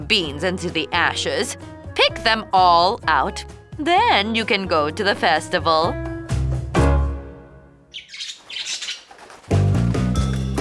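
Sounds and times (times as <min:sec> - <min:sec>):
speech: 0:00.1 - 0:06.1
bird squawking: 0:07.9 - 0:09.5
birds chirping and tweeting: 0:07.9 - 0:10.5.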